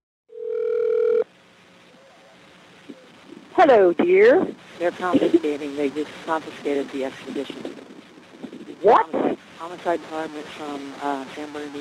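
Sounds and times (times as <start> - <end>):
telephone dial tone on a police-tapped phone line: 0.3 - 1.2
faint low telephone line hiss: 0.4 - 11.7
speech: 3.6 - 7.8, 8.8 - 11.7.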